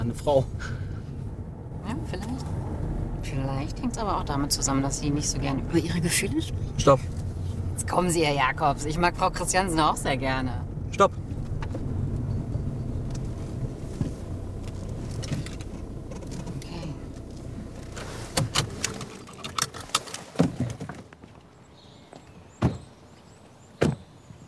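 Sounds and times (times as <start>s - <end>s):
car engine rumbling: 0.0s - 22.1s
speech: 0.1s - 0.8s, 2.1s - 7.2s, 7.9s - 11.2s
car door thuds: 22.6s - 22.9s, 23.8s - 24.1s.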